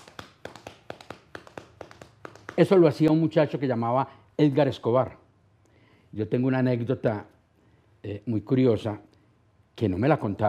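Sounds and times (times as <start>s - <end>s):
hollow coconut shells knocked imitating horses' hooves trotting: 0.0s - 3.1s
speech: 2.6s - 5.2s, 6.1s - 7.3s, 8.0s - 9.1s, 9.8s - 10.4s.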